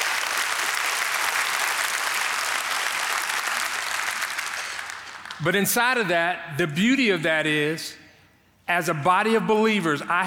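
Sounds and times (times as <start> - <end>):
congregation applauding: 0.0 - 5.5
speech: 5.4 - 8.0, 8.7 - 10.2.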